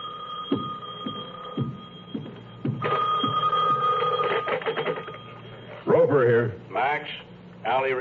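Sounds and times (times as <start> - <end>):
old-fashioned telephone bell ringing: 0.0 - 5.9
dull thuds like footsteps: 0.5 - 3.9
speech: 6.1 - 7.9.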